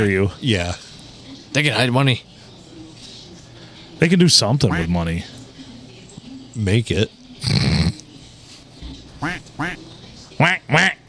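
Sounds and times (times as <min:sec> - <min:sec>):
speech: 0:00.0 - 0:00.9, 0:01.5 - 0:02.3, 0:04.0 - 0:05.4, 0:06.6 - 0:07.8, 0:10.4 - 0:11.0
duck quacking: 0:04.7 - 0:04.9, 0:09.2 - 0:09.8, 0:10.4 - 0:11.0.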